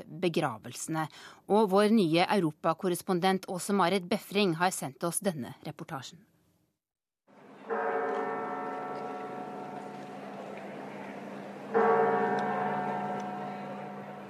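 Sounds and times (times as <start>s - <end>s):
speech: 0.2s - 6.3s
deep resonant cathedral church bells ringing: 7.5s - 14.2s.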